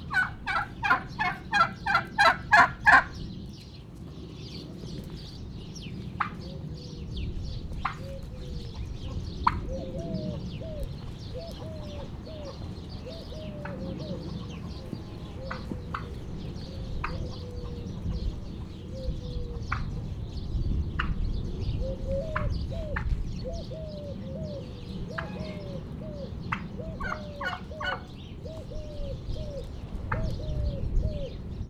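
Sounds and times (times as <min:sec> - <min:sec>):
bronze turkey peeping in Hortobágy National Park: 0:00.0 - 0:03.2, 0:07.8 - 0:20.1, 0:21.9 - 0:31.3
wind in Hortobágy National Park: 0:00.0 - 0:31.6.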